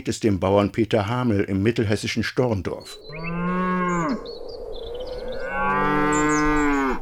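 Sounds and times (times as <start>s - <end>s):
speech: 0.0s - 4.3s
dairy cow mooing on a farm in Storndorf, central Hesse: 3.1s - 4.3s, 5.4s - 7.0s.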